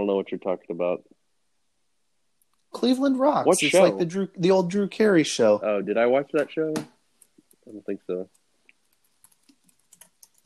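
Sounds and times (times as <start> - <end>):
speech: 0.1 - 1.2, 2.7 - 6.9, 7.7 - 8.4
typing on a computer keyboard: 8.7 - 10.4.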